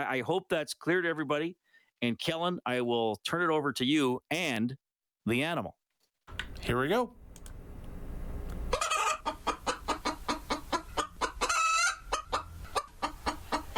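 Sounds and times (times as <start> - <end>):
speech: 0.0 - 7.2
chicken clucking: 8.7 - 13.7.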